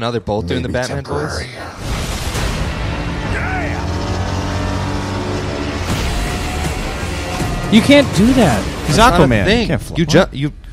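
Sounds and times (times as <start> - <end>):
speech: 0.0 - 2.0, 7.7 - 10.6
loud car engine droning: 2.6 - 9.4.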